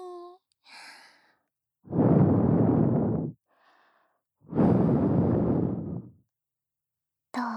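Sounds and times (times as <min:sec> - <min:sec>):
soft breath blown into the listener's ear: 0:01.9 - 0:03.3, 0:04.5 - 0:06.2.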